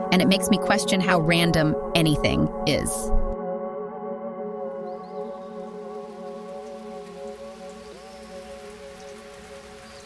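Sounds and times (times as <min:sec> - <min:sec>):
speech: 0:00.1 - 0:03.3
rain falling on a surface: 0:05.5 - 0:10.0.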